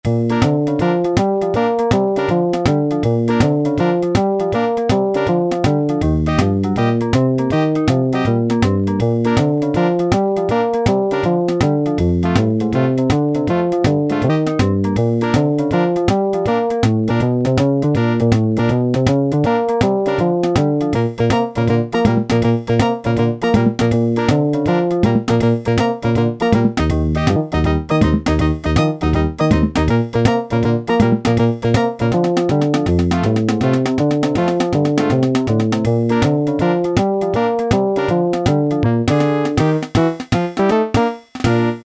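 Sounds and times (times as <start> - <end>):
boogie-woogie factory demo on Yamaha SHS-10: 0.0 - 41.8.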